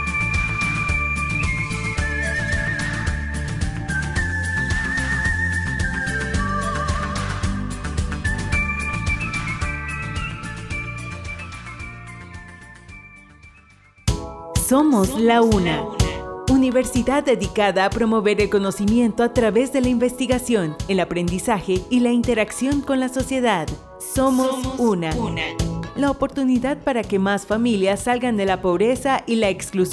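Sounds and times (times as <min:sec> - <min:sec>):
whistling artist whistling a bright warbling melody: 0:00.0 - 0:13.1
full instrumental accompaniment: 0:00.0 - 0:28.1
speech: 0:14.7 - 0:29.9.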